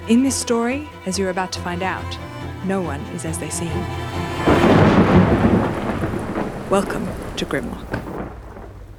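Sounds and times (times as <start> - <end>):
speech: 0.1 - 4.8, 6.7 - 8.0
deep rumble of thunder in a violent thunderstorm in a small town: 1.6 - 8.9
steady rain on a cold night in a small town: 3.3 - 8.9.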